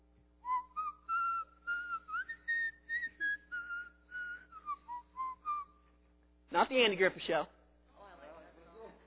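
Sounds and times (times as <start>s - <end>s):
faint steady hum: 0.0s - 9.0s
person whistling a lively melody: 0.4s - 5.8s
speech: 6.6s - 7.6s.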